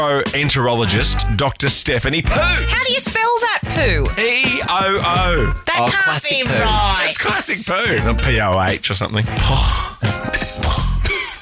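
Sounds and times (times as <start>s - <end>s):
speech: 0.0s - 10.5s
person vocally imitating a cat fart: 9.4s - 11.2s.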